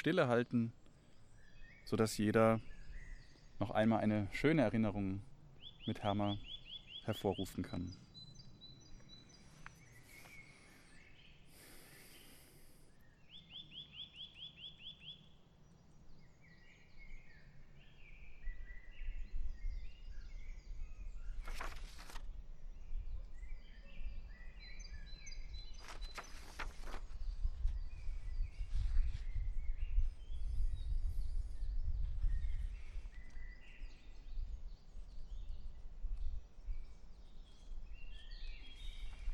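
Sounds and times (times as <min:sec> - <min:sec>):
speech: 0:00.0 - 0:00.8, 0:01.9 - 0:02.7, 0:03.6 - 0:06.5, 0:07.1 - 0:08.0
birds chirping and singing: 0:00.0 - 0:39.3
leaves rustling outdoors: 0:09.3 - 0:12.8, 0:21.3 - 0:22.4, 0:25.7 - 0:29.5.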